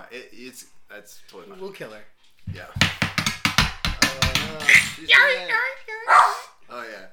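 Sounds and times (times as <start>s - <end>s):
speech: 0.1s - 3.4s, 4.1s - 7.1s
heavy thumps on a table: 2.5s - 5.0s.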